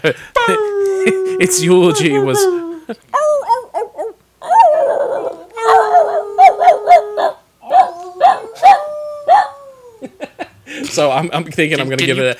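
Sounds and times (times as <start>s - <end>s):
speech: 0.0s - 3.2s, 11.0s - 12.3s
dog whimpering and yelping: 1.0s - 10.2s.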